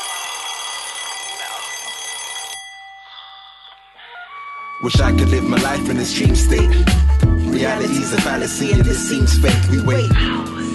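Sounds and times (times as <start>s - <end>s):
metallic alarm clock bell ringing: 0.0s - 4.1s
speech: 4.8s - 10.7s.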